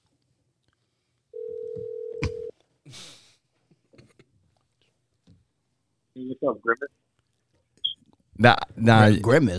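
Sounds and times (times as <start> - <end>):
ringback tone from an outgoing phone call: 1.4 - 2.5
speech: 6.3 - 7.0, 8.4 - 9.5.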